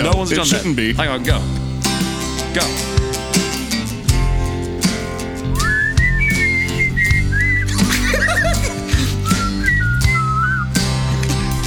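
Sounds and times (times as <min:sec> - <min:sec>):
steady musical backing: 0:00.0 - 0:11.6
speech: 0:00.2 - 0:01.6, 0:02.6 - 0:03.0
two people whistling a wavering harmonized melody: 0:05.6 - 0:10.9
laughter-like chatter: 0:05.6 - 0:11.4.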